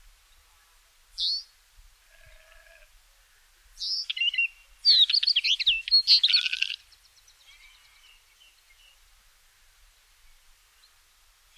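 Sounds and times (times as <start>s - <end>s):
wheatear song with scratchy whistles and chattering notes: 1.2s - 1.5s, 3.8s - 6.8s.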